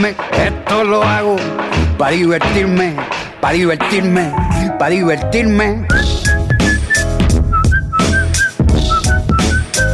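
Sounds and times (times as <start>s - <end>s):
speech: 0.0s - 6.1s
loud busy music with a steady beat: 0.0s - 9.9s
person whistling a short lilting melody: 5.9s - 9.9s.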